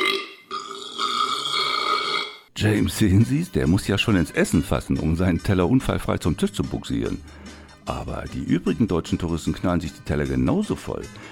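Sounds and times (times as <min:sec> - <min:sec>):
man burping loudly while eating: 0:00.0 - 0:02.5
speech: 0:02.6 - 0:11.3.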